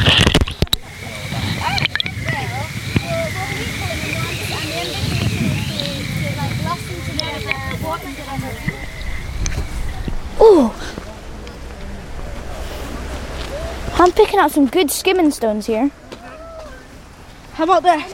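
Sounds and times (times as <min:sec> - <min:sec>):
two rivers flowing together at a confluence: 0:00.0 - 0:17.6
faint murmurs: 0:00.0 - 0:18.1
faint chirps: 0:00.8 - 0:11.8
speech: 0:14.4 - 0:16.0, 0:17.6 - 0:18.1.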